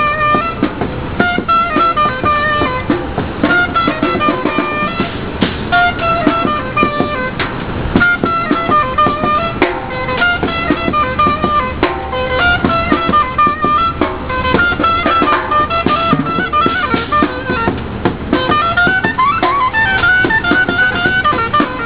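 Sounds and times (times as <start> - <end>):
clarinet in Chicago: 0.0 - 21.8
drums in Chicago: 0.0 - 21.8.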